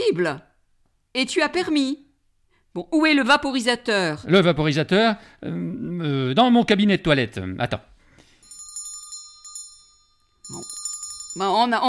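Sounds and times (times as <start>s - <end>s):
speech: 0.1s - 0.5s, 1.1s - 2.0s, 2.8s - 7.9s, 11.4s - 11.8s
bell ringing in a home to summon a servant: 8.3s - 11.8s.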